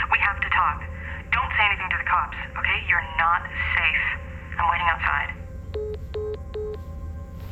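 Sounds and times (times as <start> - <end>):
low hum: 0.0 - 7.4
electronic phone beeps from a blocked call hanging up: 5.8 - 6.8.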